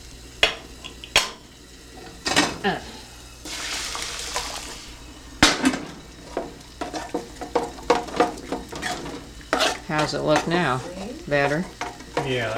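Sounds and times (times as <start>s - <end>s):
soft sizzling hiss of gravy in a metal pan: 0.0s - 12.5s
speech: 2.6s - 2.9s, 9.9s - 12.5s
spoon clinking and scraping a metal pan stirring gravy: 6.3s - 12.5s.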